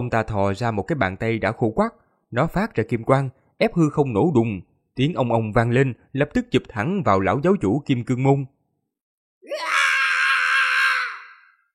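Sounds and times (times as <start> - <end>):
speech: 0.0 - 8.6
old man screaming in pain: 9.4 - 11.6.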